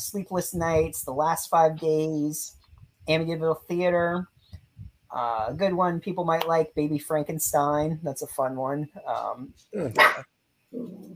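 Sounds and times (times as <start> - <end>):
speech: 0.0 - 4.3, 5.1 - 11.1
small dog barking: 10.0 - 10.3.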